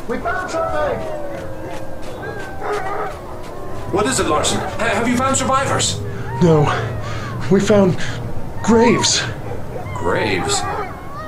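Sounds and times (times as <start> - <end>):
sled dogs barking: 0.0 - 11.2
speech: 0.1 - 1.8, 3.9 - 9.4, 10.0 - 10.7.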